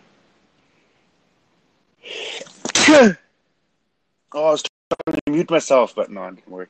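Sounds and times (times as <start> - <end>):
person sneezing: 2.0 - 3.2
speech: 2.9 - 3.2, 4.3 - 6.6.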